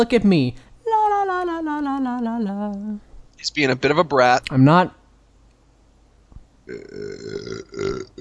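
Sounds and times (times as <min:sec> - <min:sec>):
speech: 0:00.0 - 0:00.7, 0:01.4 - 0:05.0, 0:06.7 - 0:08.1
long loud burp: 0:06.7 - 0:08.1.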